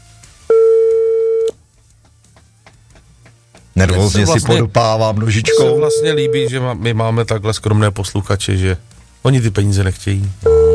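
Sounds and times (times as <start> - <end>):
electronic telephone ringing tone: 0.5 - 1.5, 5.5 - 6.6, 10.5 - 10.7
speech: 3.8 - 10.6.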